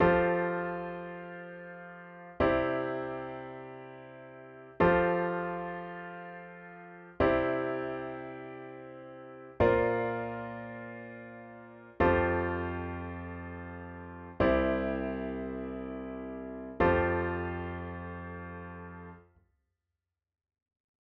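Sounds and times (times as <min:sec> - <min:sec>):
pop piano ballad with 9th bass notes: 0:00.0 - 0:19.2.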